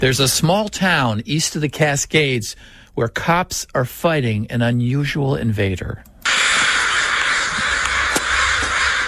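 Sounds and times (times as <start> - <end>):
speech: 0.0 - 6.1
dense chorus of crows cawing: 6.2 - 9.0.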